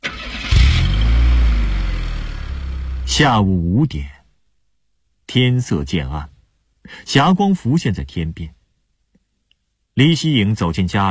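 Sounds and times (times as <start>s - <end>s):
car engine starting: 0.0s - 3.3s
speech: 3.2s - 4.2s, 5.3s - 8.6s, 10.0s - 11.0s.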